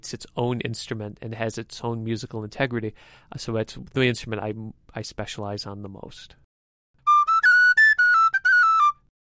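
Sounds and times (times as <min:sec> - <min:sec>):
speech: 0:00.0 - 0:06.4
tin whistle melody: 0:07.0 - 0:09.1.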